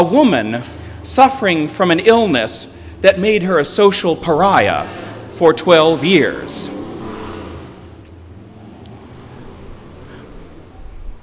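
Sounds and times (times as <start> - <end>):
speech: 0.0 - 6.8
motorcycles rumbling past outdoors: 0.2 - 11.2
rushing wind: 4.1 - 11.2.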